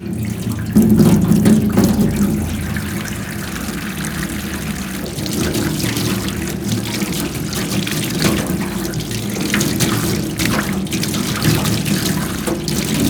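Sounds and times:
hand car wash: 0.0 - 13.0.

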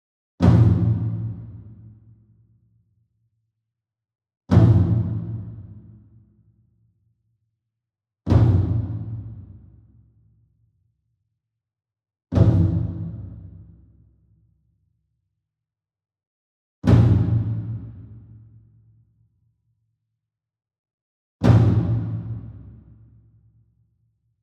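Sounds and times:
28 inch taiko drum flam with soft beater far: 0.4 - 2.2, 4.5 - 6.1, 8.3 - 10.1, 12.3 - 13.9, 16.8 - 18.5, 21.4 - 23.2.

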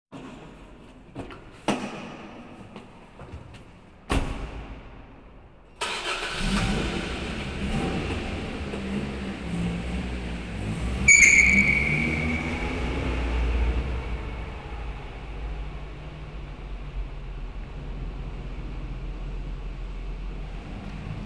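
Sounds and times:
automobile leaving a parking garage: 5.8 - 21.2.

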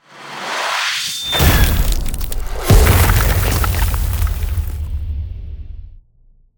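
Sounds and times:
ice spell frozen shockwave effect: 0.2 - 5.0.

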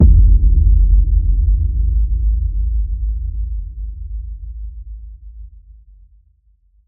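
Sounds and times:
cinematic boom hit: 0.0 - 3.5.

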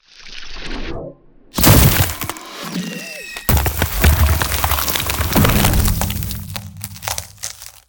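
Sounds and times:
ultimate ice spell effect: 1.6 - 7.8.

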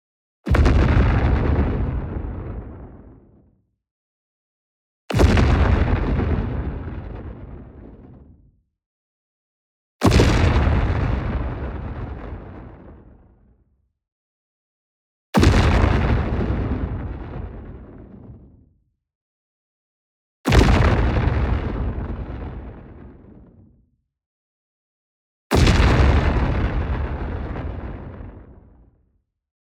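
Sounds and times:
large fusion detonation explosion: 0.5 - 3.4, 5.1 - 8.4, 10.0 - 13.2, 15.4 - 18.6, 20.5 - 23.7, 25.5 - 29.0.

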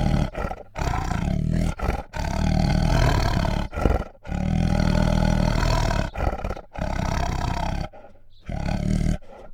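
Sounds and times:
female Bengal tiger growling and snarling: 0.0 - 9.5.

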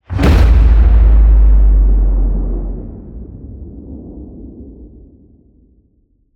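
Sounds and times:
low sci-fi designed cinematic hit: 0.0 - 5.1.

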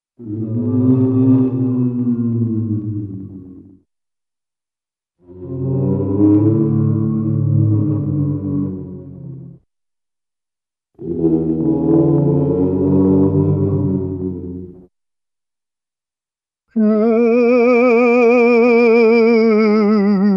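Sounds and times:
spooky cartoon ghostly moans: 0.2 - 3.8, 5.2 - 9.6, 11.0 - 14.9, 16.8 - 20.3.

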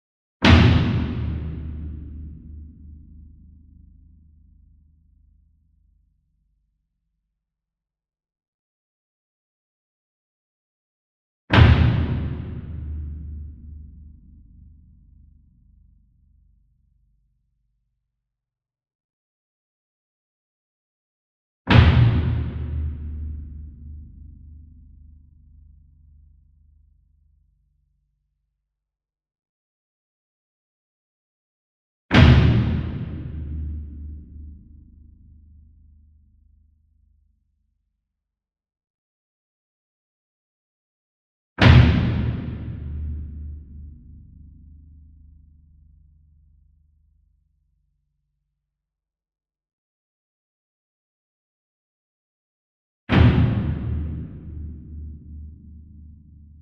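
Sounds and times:
40-inch concert bass drum flam with soft beater: 0.4 - 2.5, 11.5 - 13.6, 21.7 - 23.4, 32.1 - 34.3, 41.6 - 43.7, 53.1 - 55.7.

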